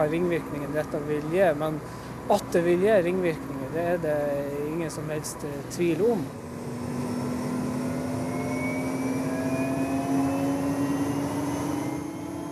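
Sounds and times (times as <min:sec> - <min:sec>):
speech: 0:00.0 - 0:06.4
helicopter flying with engine drone: 0:00.0 - 0:12.4
helicopter whining tone rising in pitch: 0:06.3 - 0:12.4.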